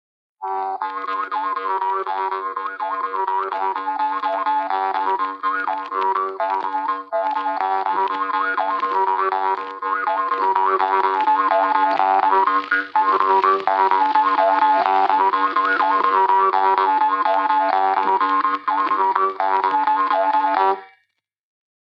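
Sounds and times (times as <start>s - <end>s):
bagpipe folk music: 0.4s - 20.9s.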